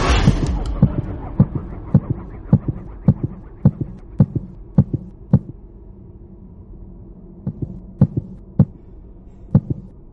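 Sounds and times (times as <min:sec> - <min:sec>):
steady hum: 0:00.0 - 0:10.1
heartbeat sound effect from a video game mind-reading power: 0:00.2 - 0:05.6, 0:07.5 - 0:08.8, 0:09.5 - 0:09.9.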